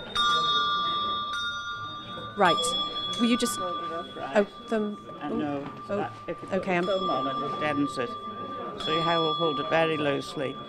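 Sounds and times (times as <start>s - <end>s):
handbell ringing: 0.0s - 10.6s
speech: 2.4s - 10.6s.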